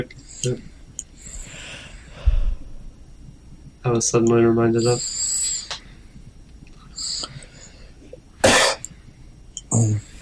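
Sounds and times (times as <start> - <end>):
speech: 0.0 - 0.7, 3.8 - 5.2
person coughing: 8.4 - 8.9.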